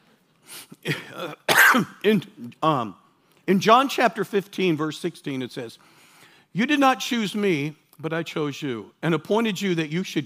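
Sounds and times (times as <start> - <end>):
man clearing throat: 0.8 - 2.0
speech: 0.9 - 5.9, 6.5 - 10.2.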